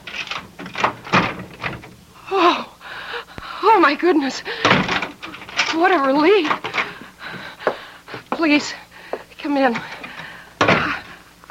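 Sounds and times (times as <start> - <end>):
door on chain lock clunks and rattles: 0.0 - 2.1, 4.6 - 7.5, 9.6 - 11.2
speech: 3.8 - 4.7, 5.8 - 6.7, 8.4 - 8.8, 9.4 - 9.9.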